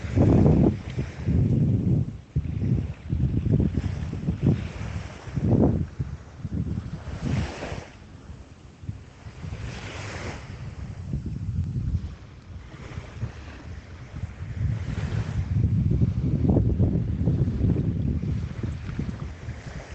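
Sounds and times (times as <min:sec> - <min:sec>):
ocean waves washing onto the shore: 0:00.0 - 0:19.9
wind rumble: 0:00.0 - 0:19.9.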